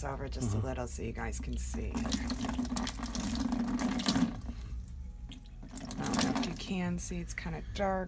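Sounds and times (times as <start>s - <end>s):
speech: 0.0s - 4.4s, 6.7s - 8.0s
running water rinsing out a trash can used as a large bucket: 1.8s - 4.6s, 5.6s - 6.6s.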